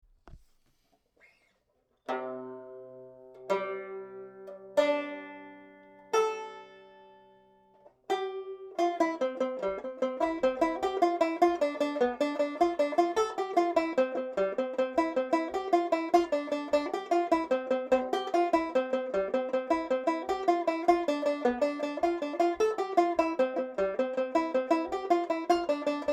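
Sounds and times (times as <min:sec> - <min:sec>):
tenor banjo playing: 0:02.1 - 0:26.1.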